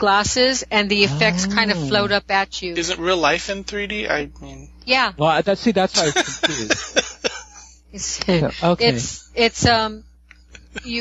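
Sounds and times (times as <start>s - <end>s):
speech: 0.0s - 7.1s, 7.9s - 10.1s, 10.8s - 11.0s
laughter: 0.9s - 2.2s, 2.8s - 4.4s, 5.4s - 9.2s, 10.6s - 11.0s
person coughing: 1.1s - 2.1s, 6.0s - 7.7s.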